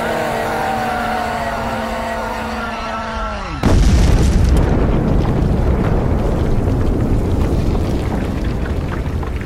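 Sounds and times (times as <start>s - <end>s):
heavy rumbling roar: 0.0s - 9.4s
loud explosion: 3.6s - 9.4s.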